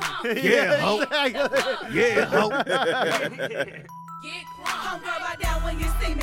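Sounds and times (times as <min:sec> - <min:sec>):
handclaps: 0:00.0 - 0:00.2, 0:03.0 - 0:03.5
snap-style rap beat: 0:00.0 - 0:03.6, 0:04.6 - 0:06.2
laughter: 0:00.0 - 0:03.9
speech: 0:00.2 - 0:06.2.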